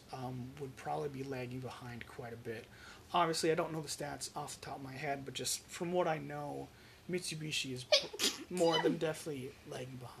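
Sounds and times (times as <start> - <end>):
speech: 0.1 - 10.1
person sneezing: 8.0 - 9.0.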